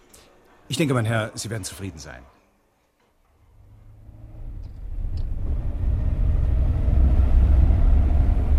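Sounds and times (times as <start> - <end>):
speech: 0.7 - 2.4
car engine rumbling as the vehicle is driven off: 3.5 - 8.5.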